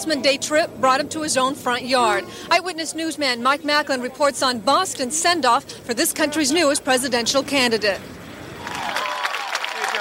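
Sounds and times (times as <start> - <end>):
speech: 0.0 - 8.2
large crowd of supporters roaring and cheering: 8.6 - 9.9
whoops: 8.6 - 9.9.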